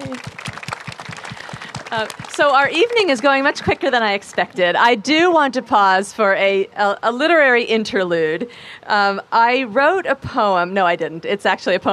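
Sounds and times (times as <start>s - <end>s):
audience applause: 0.0s - 4.6s
speech: 1.9s - 11.9s.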